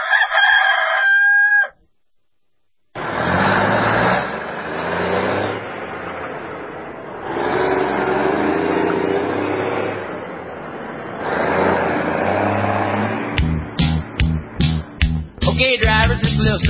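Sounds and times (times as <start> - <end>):
rooster crowing: 0.0 - 1.8
car engine rumbling while driving: 3.0 - 16.6.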